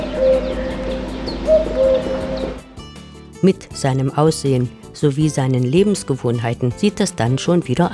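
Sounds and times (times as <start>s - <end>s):
common cuckoo calling: 0.0s - 2.7s
faint chirping birds: 0.0s - 2.7s
speech: 3.4s - 7.9s.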